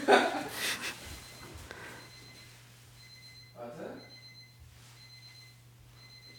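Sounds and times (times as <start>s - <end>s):
laughter: 0.0s - 1.0s
person snorting: 0.5s - 1.0s
faint electronic alarm clock beeping: 1.2s - 6.3s.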